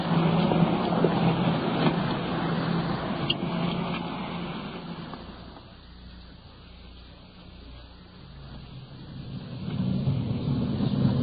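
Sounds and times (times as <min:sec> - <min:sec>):
police car engine running: 0:00.0 - 0:11.2
road noise: 0:00.0 - 0:11.2.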